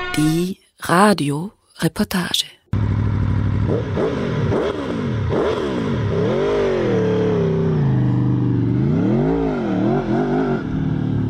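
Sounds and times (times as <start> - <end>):
speech: 0.2 - 2.5, 3.7 - 4.4
motorcycle engine revving and accelerating through gear changes: 2.7 - 11.2.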